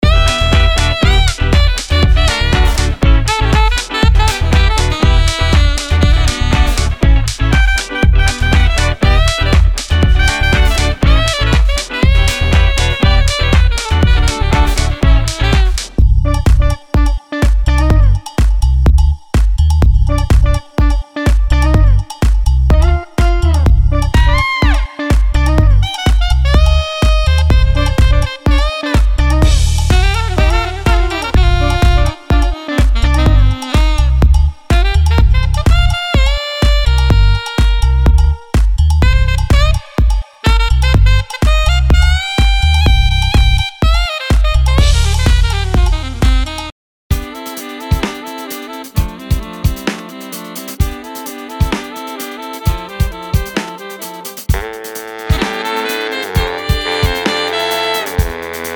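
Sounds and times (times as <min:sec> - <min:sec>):
funk music: 0:00.0 - 0:58.7.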